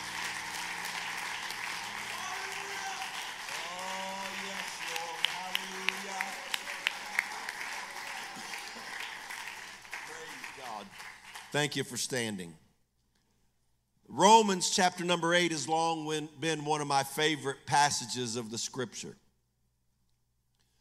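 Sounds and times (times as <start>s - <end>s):
audience clapping hands in praise: 0.0s - 11.7s
speech: 11.5s - 12.6s, 14.2s - 19.2s.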